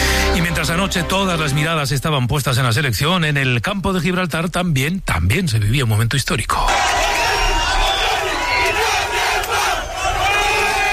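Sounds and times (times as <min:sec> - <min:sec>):
speech: 0:00.6 - 0:07.0
crowd of neighbours cheering and shouting in celebration as a border fence comes down: 0:06.7 - 0:10.9.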